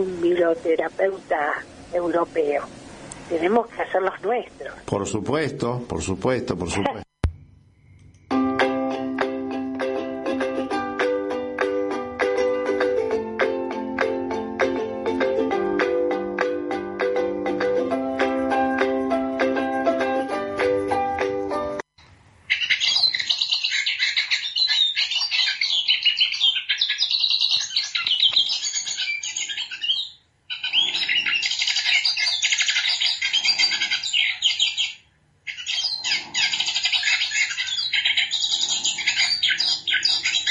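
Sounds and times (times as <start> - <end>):
speech: 0.0 - 7.0
music: 8.2 - 21.9
hooded siskin singing twittering phrases: 22.5 - 40.4.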